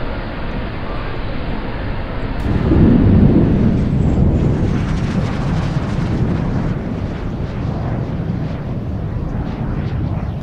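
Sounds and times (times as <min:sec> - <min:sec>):
rocket launching with a trail of fire: 0:02.4 - 0:10.4.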